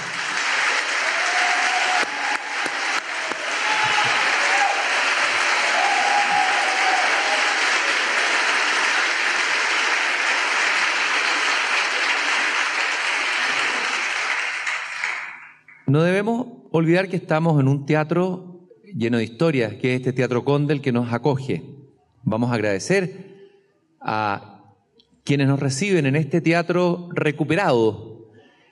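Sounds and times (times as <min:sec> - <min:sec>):
large audience applause in a theatre: 0:00.0 - 0:15.8
speech: 0:15.9 - 0:23.3, 0:24.0 - 0:24.5, 0:25.2 - 0:28.1.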